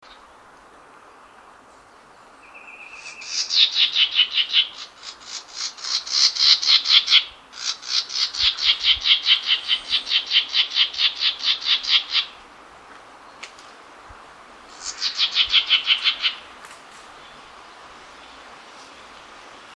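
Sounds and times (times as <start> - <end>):
Yellow-throated Vireo Vireo flavifrons singing: 2.0 - 12.4, 14.7 - 16.5.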